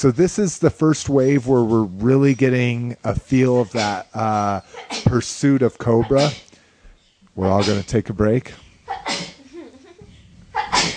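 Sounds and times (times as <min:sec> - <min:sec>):
speech: 0:00.0 - 0:06.5, 0:07.4 - 0:09.2
person sneezing: 0:06.0 - 0:06.5, 0:07.6 - 0:07.9, 0:08.9 - 0:09.4, 0:10.6 - 0:10.9.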